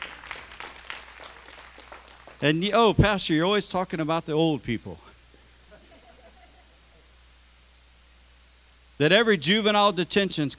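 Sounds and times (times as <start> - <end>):
scattered hand claps from a small crowd in a reverberant room: 0.0 - 3.3
speech: 2.4 - 5.1, 9.0 - 10.5
laughter: 5.6 - 7.2.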